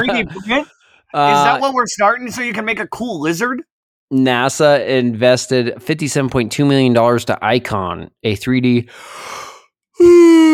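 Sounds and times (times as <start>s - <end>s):
speech: 0.0s - 9.4s, 10.0s - 10.5s
person yawning close to the microphone: 10.0s - 10.5s.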